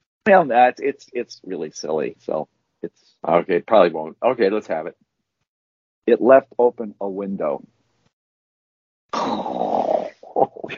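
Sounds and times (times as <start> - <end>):
speech: 0.2 - 5.0, 6.1 - 7.8, 10.4 - 10.7
person mock snoring after a bad joke: 9.1 - 10.7.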